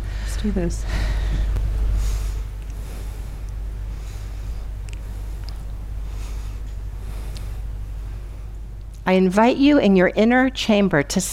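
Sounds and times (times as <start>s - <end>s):
deep slow breaths during a guided breathing practice: 0.0s - 8.6s
speech: 0.4s - 1.5s, 9.1s - 11.3s.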